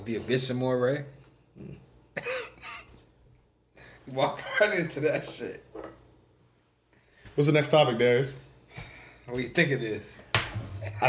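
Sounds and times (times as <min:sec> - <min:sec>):
speech: 0:00.0 - 0:02.3, 0:04.1 - 0:05.7, 0:07.4 - 0:08.4, 0:09.3 - 0:10.2, 0:10.8 - 0:11.0
person coughing into microphone: 0:02.2 - 0:02.9
laughter: 0:10.8 - 0:11.0.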